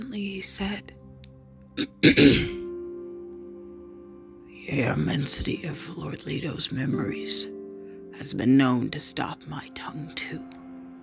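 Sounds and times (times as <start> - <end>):
speech: 0.0 - 1.0, 1.8 - 2.6, 4.7 - 7.6, 8.2 - 10.6
person clearing throat: 1.8 - 2.7.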